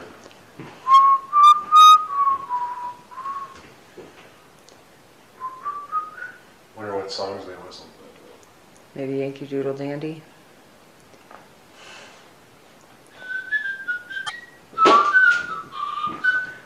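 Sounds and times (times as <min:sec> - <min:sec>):
whistle: 0:00.8 - 0:03.6, 0:05.4 - 0:06.4, 0:13.1 - 0:16.6.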